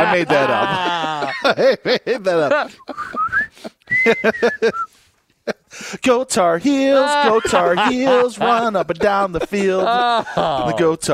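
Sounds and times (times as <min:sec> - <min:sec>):
laughter: 0:00.0 - 0:06.0, 0:06.6 - 0:11.1
speech: 0:00.1 - 0:04.9, 0:05.8 - 0:11.1
person whistling a short tune: 0:02.8 - 0:05.0.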